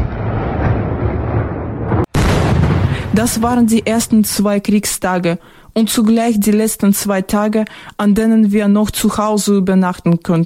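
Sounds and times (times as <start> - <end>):
explosions from Russian artillery attacks on a city at night: 0.0 - 4.8
speech: 3.2 - 10.4.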